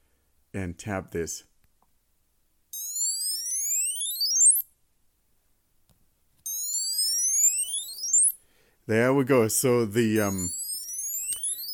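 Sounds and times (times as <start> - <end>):
speech: 0.5 - 1.5, 8.9 - 10.6
high-pitched find-me alert tone from a Bluetooth tracker tag: 2.8 - 4.7, 6.5 - 8.4, 10.2 - 11.7.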